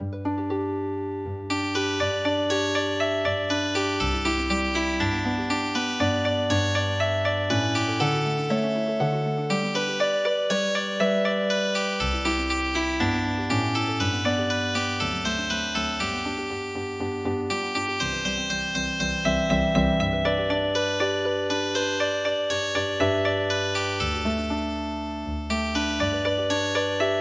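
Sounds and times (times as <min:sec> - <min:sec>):
healing harp music: 0:00.0 - 0:27.1.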